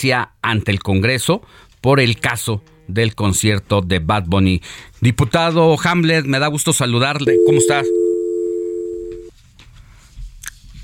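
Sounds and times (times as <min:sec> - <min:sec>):
speech: 0:00.0 - 0:08.0
faint low noise: 0:07.2 - 0:09.3
telephone dial tone after a call is cut off: 0:07.3 - 0:09.3.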